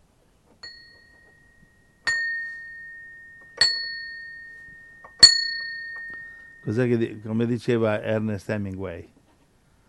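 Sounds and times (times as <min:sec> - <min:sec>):
bell ringing: 0:00.6 - 0:07.5
speech: 0:06.6 - 0:09.2.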